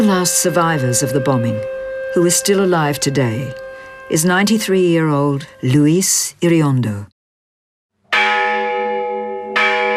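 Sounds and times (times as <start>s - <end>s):
loud church bell strikes with lingering overtones: 0.0s - 5.9s, 8.1s - 9.9s
speech: 0.0s - 7.1s.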